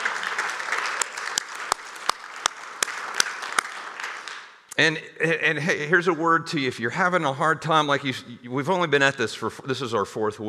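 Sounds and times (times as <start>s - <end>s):
crowd of people clapping in celebration: 0.0s - 4.7s
speech: 4.8s - 10.4s.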